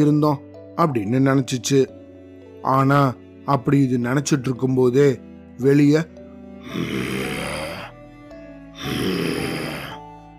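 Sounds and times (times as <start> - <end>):
speech: 0.0 - 2.0, 2.6 - 7.2
person's voice imitating an approaching lion's growl: 6.6 - 7.9, 8.8 - 10.0.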